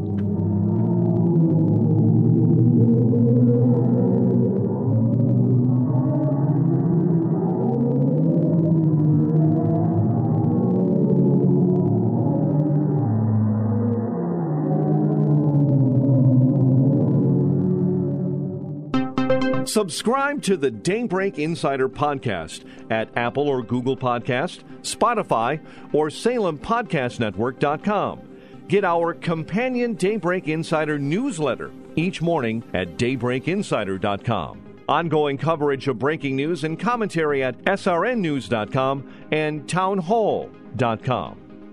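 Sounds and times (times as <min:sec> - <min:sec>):
deep droning hum from a cluster's hot gas translated into a note: 0:00.0 - 0:19.5
speech: 0:19.8 - 0:41.4.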